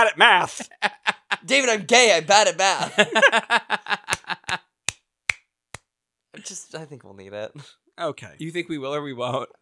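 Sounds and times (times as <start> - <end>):
speech: 0.0 - 4.1, 6.4 - 9.6
laughter: 0.4 - 1.6, 2.7 - 4.6
sharp crisp hand claps: 4.1 - 5.9.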